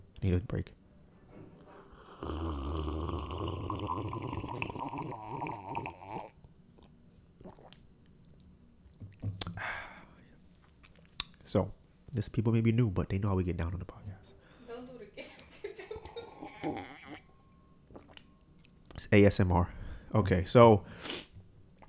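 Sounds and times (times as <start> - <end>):
speech: 0.2 - 0.8, 11.5 - 14.1, 19.1 - 21.1
loud wet gulping and swallowing of drinking water: 2.0 - 7.9, 16.2 - 17.3, 17.9 - 18.3.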